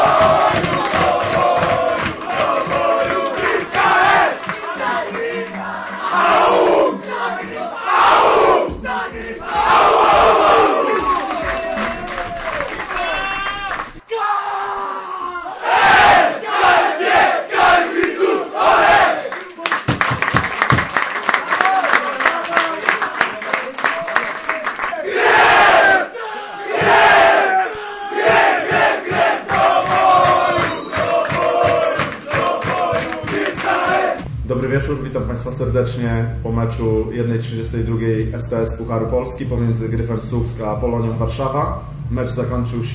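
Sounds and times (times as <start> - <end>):
football team clapping: 0.0 - 6.8, 9.6 - 14.0, 17.6 - 26.0, 28.2 - 34.3
football team cheering, shouting and whooping after a cup match win: 0.0 - 19.4, 21.6 - 34.3
speech: 35.4 - 42.9.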